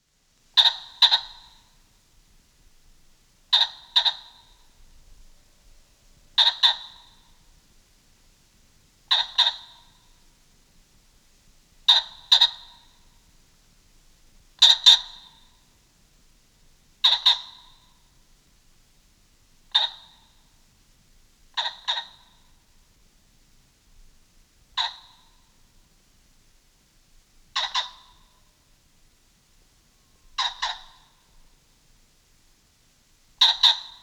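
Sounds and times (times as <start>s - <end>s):
pheasant calling: 0.5s - 1.9s, 3.5s - 5.3s, 6.3s - 7.6s, 9.1s - 10.3s, 11.8s - 13.3s, 14.6s - 15.7s, 17.0s - 18.2s, 19.7s - 20.6s, 21.5s - 22.7s, 24.7s - 25.7s, 27.5s - 28.6s, 29.9s - 31.5s, 33.4s - 34.0s.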